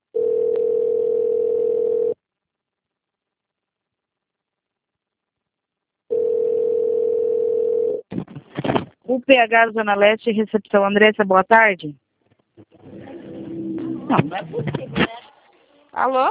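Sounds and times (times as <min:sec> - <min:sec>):
telephone ringback tone while a call is transferred: 0:00.2 - 0:02.2, 0:06.1 - 0:08.0
speech: 0:09.3 - 0:12.0, 0:14.1 - 0:15.1, 0:15.9 - 0:16.2.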